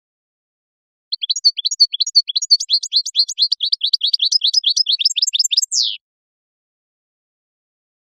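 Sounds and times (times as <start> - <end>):
European goldfinch singing high twittering and tinkling notes: 1.1 - 6.0.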